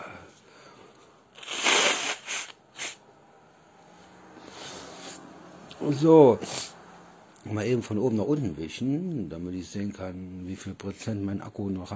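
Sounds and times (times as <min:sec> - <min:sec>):
person blowing their nose: 0:01.3 - 0:03.1, 0:04.4 - 0:05.3
short sharp snorts: 0:01.4 - 0:03.0, 0:04.4 - 0:05.3, 0:06.4 - 0:06.8
speech: 0:05.8 - 0:06.7, 0:07.5 - 0:11.9.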